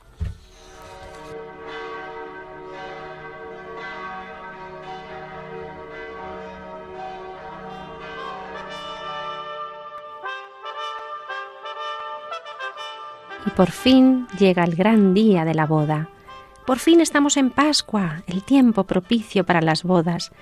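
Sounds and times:
low humming drone: 0.5 - 10.0
church wedding bells pealing: 0.5 - 20.4
speech: 13.4 - 20.4.

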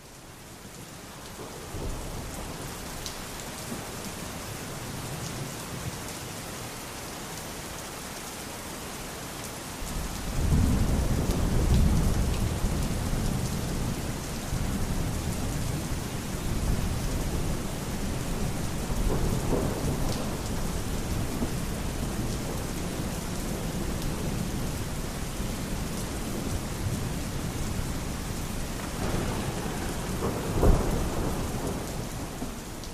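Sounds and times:
steady rain: 0.0 - 32.9
deep rolling rumble of thunder: 10.2 - 32.9.

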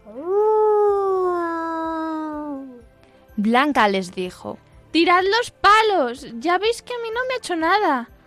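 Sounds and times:
wolf howling: 0.0 - 2.8
speech: 3.4 - 8.1.

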